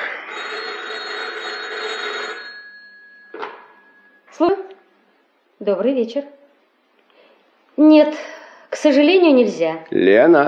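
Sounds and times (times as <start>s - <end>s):
telephone bell ringing: 0.0s - 4.6s
speech: 4.4s - 4.6s, 5.6s - 6.4s, 7.8s - 10.4s.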